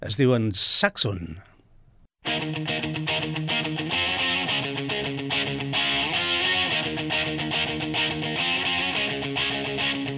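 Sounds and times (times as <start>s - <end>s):
speech: 0.0s - 1.5s, 2.2s - 3.4s
dense distorted electric guitars in a heavy metal song: 2.3s - 10.1s.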